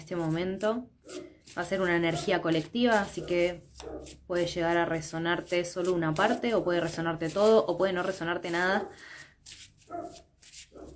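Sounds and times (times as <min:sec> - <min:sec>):
speech: 0:00.1 - 0:10.3
dog barking: 0:01.0 - 0:01.4, 0:03.2 - 0:04.2, 0:09.9 - 0:10.9.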